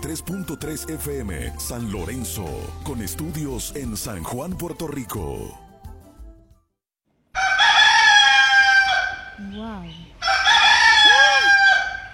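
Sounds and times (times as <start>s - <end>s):
speech: 0.0s - 5.6s
rooster crowing: 7.4s - 9.4s, 10.2s - 12.1s.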